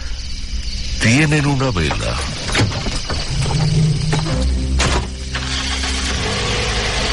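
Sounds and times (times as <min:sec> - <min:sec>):
speech: 0:01.0 - 0:02.4
car engine cranking, starting and idling as the vehicle pulls off: 0:03.0 - 0:07.1.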